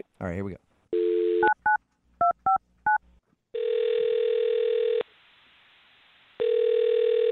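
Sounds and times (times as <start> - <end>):
telephone ringing tone: 0.9 - 1.6, 3.5 - 5.0, 6.4 - 7.2.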